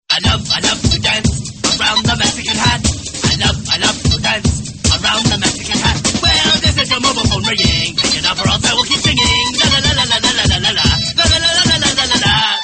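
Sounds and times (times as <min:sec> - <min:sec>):
Mexican dance tone: 0:00.1 - 0:12.6.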